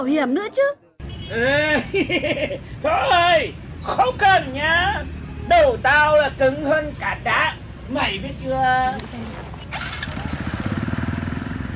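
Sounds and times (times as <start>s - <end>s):
speech: 0.0s - 9.4s
laughter: 1.5s - 2.7s
motorcycle engine roaring as the bike rides off fast: 2.9s - 11.7s.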